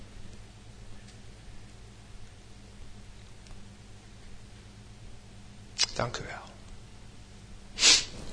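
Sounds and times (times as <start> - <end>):
speech: 6.0 - 6.5
person sniffling with a runny nose: 7.7 - 8.2.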